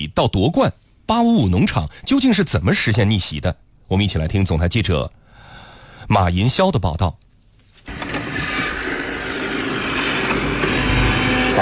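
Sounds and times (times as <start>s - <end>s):
speech: 0.0s - 5.2s, 6.1s - 7.2s
heavy tractor engine droning: 7.9s - 11.5s.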